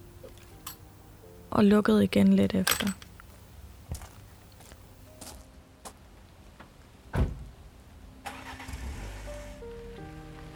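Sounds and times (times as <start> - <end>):
speech: 1.5 - 3.0
sharp clunks: 2.7 - 3.4
car engine starting and revving as the car drives away from the driveway: 8.2 - 9.6.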